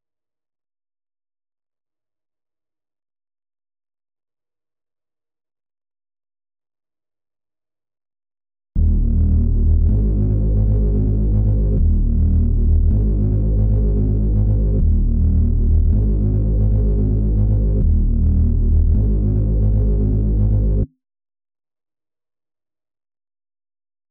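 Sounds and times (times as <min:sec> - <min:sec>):
D sharp minor bass melody loop: 0:08.8 - 0:20.9.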